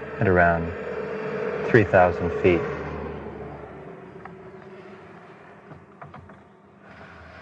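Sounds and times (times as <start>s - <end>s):
road traffic going by outside a stopped car: 0.0s - 7.4s
speech: 0.2s - 0.8s, 1.6s - 2.8s
faint clicks and knocks: 4.2s - 7.0s.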